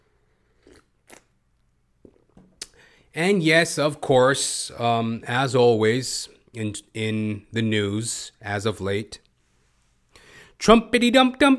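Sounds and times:
soft mouth sounds: 0.3s - 1.4s, 2.0s - 2.9s
person slurping a hot coffee: 0.4s - 1.3s
speech: 3.1s - 9.2s, 10.6s - 11.5s.

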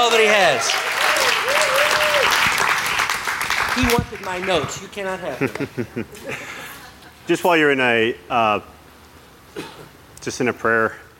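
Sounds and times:
speech: 0.0s - 2.4s, 3.8s - 6.6s, 7.3s - 8.7s, 9.6s - 11.1s
room full of people applauding: 0.0s - 5.2s
laughter: 5.3s - 7.5s.

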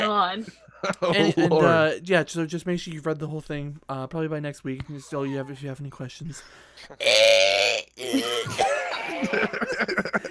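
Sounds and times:
speech: 0.2s - 10.2s
laughter: 0.8s - 1.8s, 4.8s - 5.8s, 8.3s - 10.2s
throaty groan: 6.9s - 8.6s
strained grunt: 6.9s - 8.7s.

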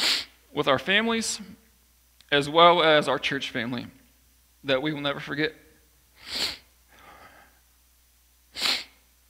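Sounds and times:
sniffling into the microphone: 0.0s - 0.4s, 6.2s - 7.6s, 8.5s - 9.0s
speech: 0.6s - 1.6s, 2.3s - 4.0s, 4.6s - 5.6s.

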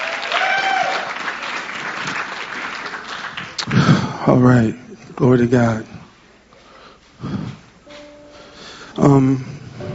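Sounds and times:
large crowd clapping for a worship band: 0.0s - 4.0s
speech: 3.7s - 5.9s, 9.0s - 9.6s.

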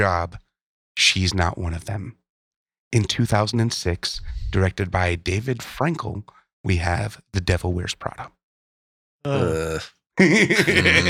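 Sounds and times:
speech: 0.0s - 0.4s, 1.0s - 2.2s, 2.9s - 8.4s, 9.2s - 11.0s
person yawning with a groan: 9.3s - 9.9s
laughter: 10.2s - 11.0s.

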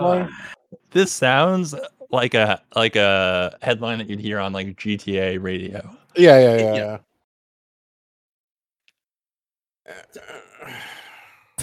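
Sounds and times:
speech: 0.0s - 7.1s
person groaning: 6.2s - 7.0s, 9.9s - 11.2s.

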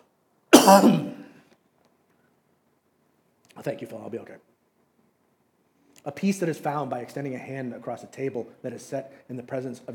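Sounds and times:
harsh cough with raspy throat-clearing: 0.5s - 1.4s
speech: 0.7s - 1.1s, 3.6s - 4.5s, 6.0s - 9.9s.

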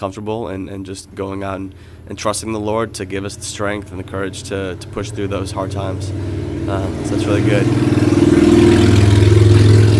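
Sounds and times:
speech: 0.0s - 8.9s
motorcycle revving as it passes by: 2.7s - 9.9s.

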